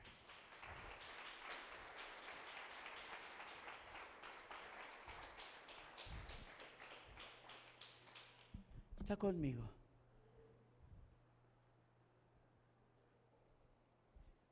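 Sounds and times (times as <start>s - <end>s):
crowd applauding: 0.0s - 8.7s
speech: 9.1s - 9.8s.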